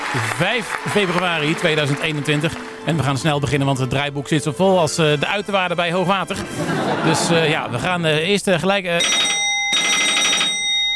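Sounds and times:
speech: 0.1s - 9.3s
laughter: 6.2s - 8.2s
telephone ringing with an electronic trill: 9.0s - 10.9s.

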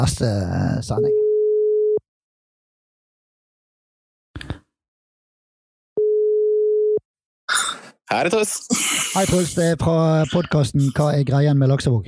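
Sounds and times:
speech: 0.0s - 1.2s, 8.1s - 12.0s
electronic telephone ringback tones while calling: 1.2s - 2.0s, 6.0s - 7.0s.

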